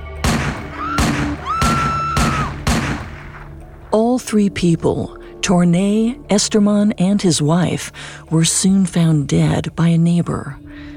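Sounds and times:
loud sharp gunshots: 0:00.2 - 0:03.6
speech: 0:03.9 - 0:10.9.

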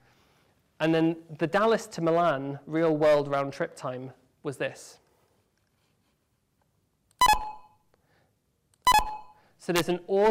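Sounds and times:
speech: 0:00.8 - 0:05.0, 0:09.6 - 0:10.2
short two-tone electronic beeps: 0:07.2 - 0:07.8, 0:08.8 - 0:09.4.

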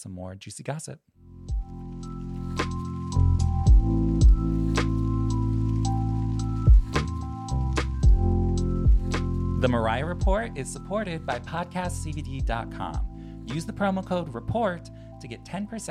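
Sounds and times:
speech: 0:00.0 - 0:02.8, 0:09.6 - 0:15.8
steady wash of rain-like water in a splash transition effect: 0:01.9 - 0:09.5.

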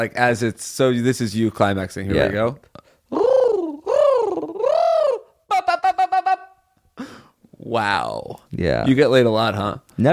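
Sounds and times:
speech: 0:00.0 - 0:03.2, 0:07.7 - 0:10.1
person imitating pigeon cooing: 0:03.1 - 0:06.6.

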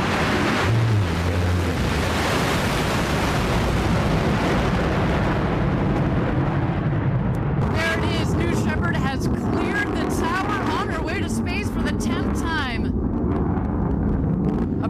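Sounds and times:
rocket engine roar at liftoff: 0:00.0 - 0:14.8
crackling voice fragments: 0:07.6 - 0:12.9, 0:14.6 - 0:14.8.

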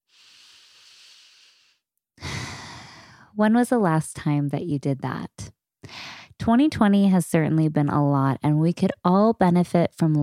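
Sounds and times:
breathy exhale: 0:00.0 - 0:03.2
long airy deep inhale: 0:00.0 - 0:03.3, 0:05.9 - 0:06.3
speech: 0:03.4 - 0:10.2.

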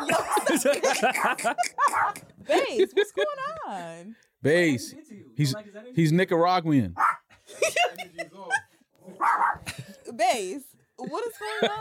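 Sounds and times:
laughter: 0:00.0 - 0:03.6, 0:07.3 - 0:10.2, 0:11.0 - 0:11.8
dog barking: 0:00.1 - 0:00.5, 0:01.1 - 0:02.2, 0:07.0 - 0:07.3, 0:09.2 - 0:09.6
speech: 0:00.1 - 0:08.0, 0:10.1 - 0:11.8.

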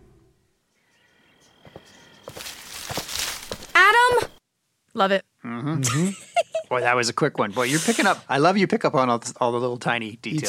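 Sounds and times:
thin steady chirp of birds or insects: 0:00.0 - 0:04.4
footsteps crunching through dry leaves: 0:01.7 - 0:04.4
speech: 0:05.0 - 0:10.4.

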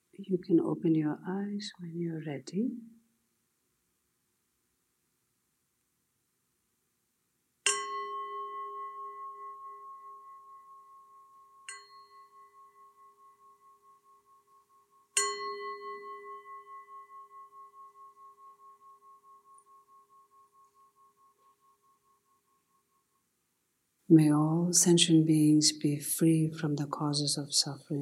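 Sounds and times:
speech: 0:00.2 - 0:03.0, 0:24.1 - 0:28.0
meditation bell ringing: 0:07.7 - 0:23.2.

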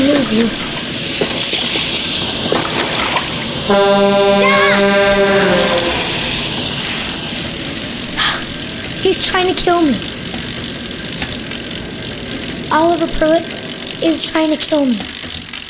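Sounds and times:
loud droning electronic buzz: 0:00.0 - 0:15.6
speech: 0:00.3 - 0:01.5, 0:03.7 - 0:05.2, 0:09.2 - 0:10.1, 0:12.7 - 0:15.2
constant rushing engine-like roar: 0:03.6 - 0:08.2.

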